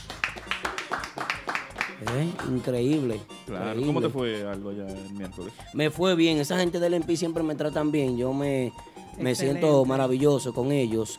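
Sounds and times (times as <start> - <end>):
a few people clapping: 0.0 - 3.4
speech: 2.0 - 11.1.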